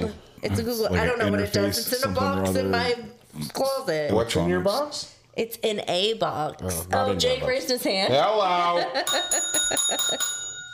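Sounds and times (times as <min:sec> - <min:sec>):
speech: 0:00.4 - 0:10.4
small bell ringing: 0:09.1 - 0:10.7.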